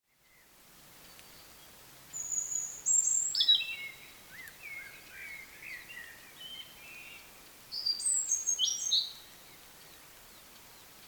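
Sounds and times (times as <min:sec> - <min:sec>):
European robin song with high thin whistled and trilled phrases: 0:02.2 - 0:09.3.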